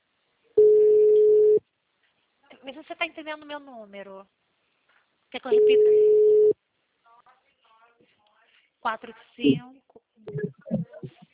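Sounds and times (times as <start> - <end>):
telephone busy tone after a dropped call: 0.6 - 1.6, 5.6 - 6.5
speech: 2.7 - 4.4, 5.3 - 6.2, 8.8 - 10.7.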